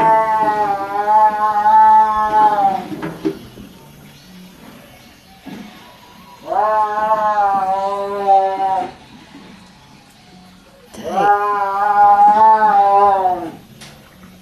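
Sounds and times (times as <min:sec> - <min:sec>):
caged tiger yowling under a tent: 0:00.0 - 0:02.9, 0:06.0 - 0:09.0, 0:10.3 - 0:13.7.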